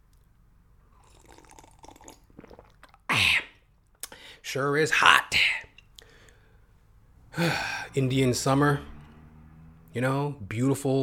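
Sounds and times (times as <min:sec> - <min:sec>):
loud gulping swallow with a breathy edge: 0:00.9 - 0:04.2
person sipping water with wet mouth sounds: 0:00.9 - 0:04.2
speech: 0:04.5 - 0:05.6, 0:07.4 - 0:08.9, 0:10.0 - 0:11.0.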